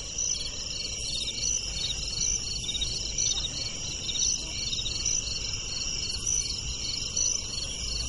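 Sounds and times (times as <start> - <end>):
crickets chirping on the glass of a closed window: 0.0 - 8.0.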